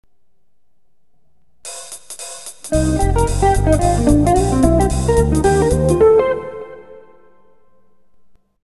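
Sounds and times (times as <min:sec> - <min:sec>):
jazz music: 0:01.7 - 0:07.6.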